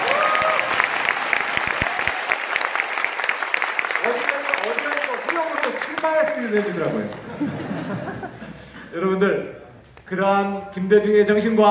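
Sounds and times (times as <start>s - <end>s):
audience applause at a speech on democracy: 0.0s - 7.9s
crowd noise: 0.0s - 11.6s
speech: 6.0s - 11.6s
laughter: 6.9s - 9.0s.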